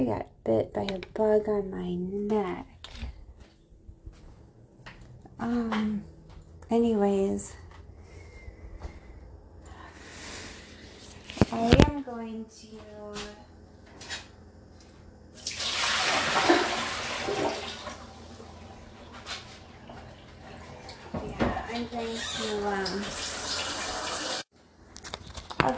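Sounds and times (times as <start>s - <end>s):
speech: 0.0s - 3.1s, 5.4s - 6.1s, 6.7s - 7.6s, 11.5s - 13.4s, 21.8s - 23.3s
tap water running into a pot for boiling red potatoes: 15.4s - 19.1s, 22.7s - 24.5s.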